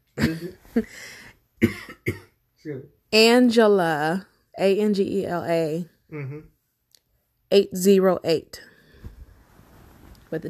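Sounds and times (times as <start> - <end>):
harsh raspy coughs: 0.2 - 0.6, 1.6 - 2.4
speech: 0.4 - 6.5, 7.5 - 8.7.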